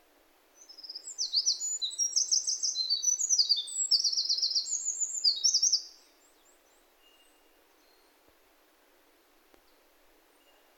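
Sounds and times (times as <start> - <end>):
bird song of very high squeaky slurred notes and short trill: 0.8 - 5.8.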